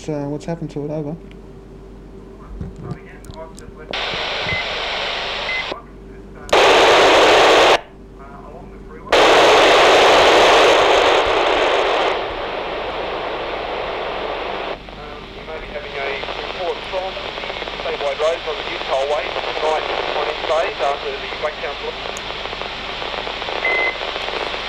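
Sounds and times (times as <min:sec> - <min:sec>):
speech: 0:00.0 - 0:01.4
harsh two-way radio static crackling and hissing: 0:03.9 - 0:05.9, 0:06.5 - 0:07.9, 0:09.1 - 0:24.6.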